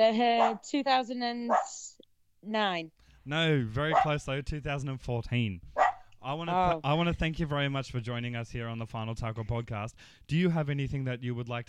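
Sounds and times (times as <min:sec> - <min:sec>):
speech: 0:00.0 - 0:11.6
dogs barking: 0:00.4 - 0:00.7, 0:01.5 - 0:01.8, 0:03.9 - 0:04.2, 0:05.8 - 0:06.1.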